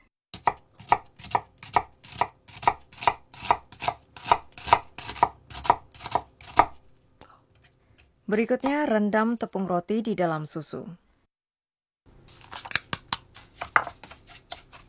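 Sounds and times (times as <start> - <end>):
knife finely chopping onion: 0.4 - 6.9, 12.3 - 14.8
speech: 8.3 - 11.0.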